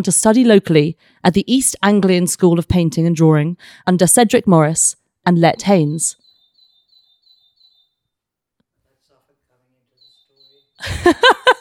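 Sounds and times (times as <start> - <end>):
speech: 0.0 - 6.2, 10.8 - 11.4
bird clock playing recorded bird call chirps: 5.3 - 8.2, 9.9 - 10.9
laughter: 10.8 - 11.5.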